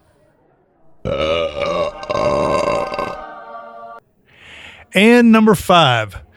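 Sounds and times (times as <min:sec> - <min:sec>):
loud drawn-out belch: 0:01.0 - 0:03.2
speech: 0:05.0 - 0:06.2.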